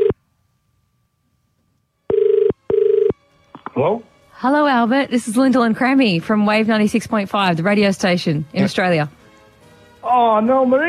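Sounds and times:
phone ringback tone on an outgoing call: 0:02.1 - 0:03.2
speech: 0:03.8 - 0:09.2, 0:10.0 - 0:10.8.

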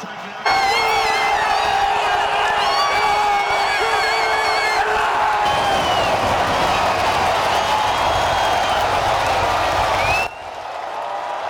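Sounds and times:
stadium crowd cheering after a soccer goal: 0:00.0 - 0:11.4.

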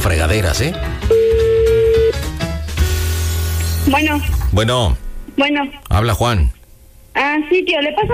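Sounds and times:
speech: 0:00.0 - 0:01.2, 0:03.9 - 0:06.6, 0:07.2 - 0:08.1
music: 0:00.0 - 0:05.8
telephone ringback tone from an outgoing call: 0:01.1 - 0:02.2.

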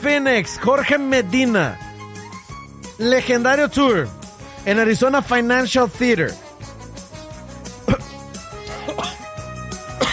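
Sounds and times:
speech: 0:00.0 - 0:01.8, 0:03.0 - 0:06.4
person coughing: 0:07.8 - 0:09.4, 0:10.0 - 0:10.1.

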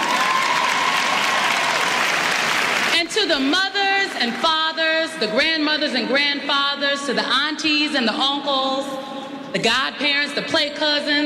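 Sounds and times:
audience applause at a college commencement ceremony: 0:00.0 - 0:03.0
speech: 0:03.2 - 0:11.2.

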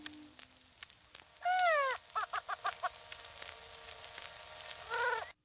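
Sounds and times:
greater prairie chicken hooting: 0:01.4 - 0:02.9, 0:04.9 - 0:05.3.

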